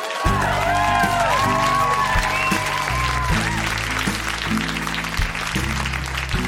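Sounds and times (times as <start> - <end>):
whoops and cheers: 0.0 - 4.2
large audience applause: 0.0 - 6.4
low musical backing: 0.3 - 6.4.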